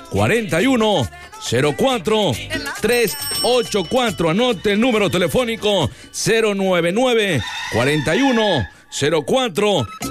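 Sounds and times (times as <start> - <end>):
speech: 0.1 - 10.0
rooster crowing: 7.2 - 8.8.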